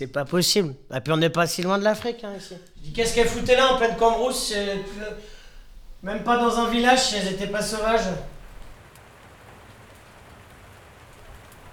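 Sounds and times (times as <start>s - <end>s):
speech: 0.0s - 5.4s, 6.0s - 8.3s
steady rain falling on a city street in Lyon: 5.7s - 11.7s.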